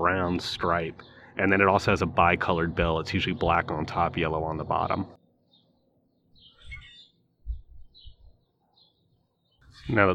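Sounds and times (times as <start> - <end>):
starlings calling from a tree at sunrise: 0.0 - 10.1
speech: 0.3 - 5.2, 9.9 - 10.1.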